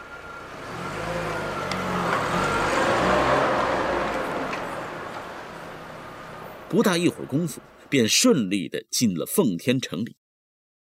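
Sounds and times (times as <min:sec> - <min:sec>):
car carrying three people humming as it drives into a city: 0:00.0 - 0:07.9
road noise: 0:00.0 - 0:08.5
speech: 0:06.7 - 0:10.2.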